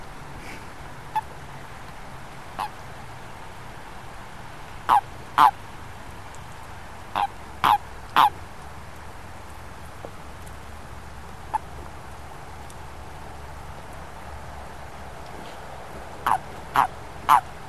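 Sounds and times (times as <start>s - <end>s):
amphibian calling with short clipped honking notes: 4.8s - 5.6s, 7.1s - 8.4s, 16.2s - 17.5s.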